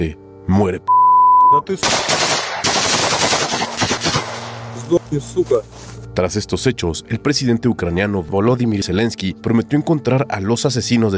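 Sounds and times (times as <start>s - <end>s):
speech: 0.0s - 2.3s, 4.9s - 11.1s
automatic weapon gunfire: 1.8s - 4.8s
single gunshots: 1.8s - 5.0s.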